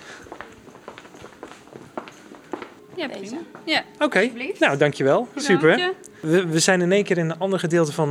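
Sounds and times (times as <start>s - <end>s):
footsteps walking through a shop: 0.0s - 3.8s
low hum of indoor shop ambience: 0.0s - 8.0s
speech: 3.0s - 8.0s.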